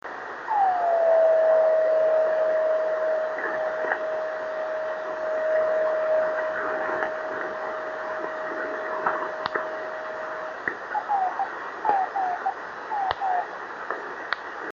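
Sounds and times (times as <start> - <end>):
driftnet beacon signals: 0.5 - 13.5.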